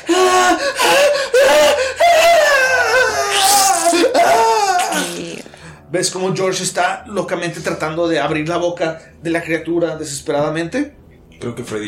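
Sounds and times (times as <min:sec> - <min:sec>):
acted screams of pain of someone bitten by a giant toad: 0:00.0 - 0:05.6
speech: 0:06.0 - 0:11.8.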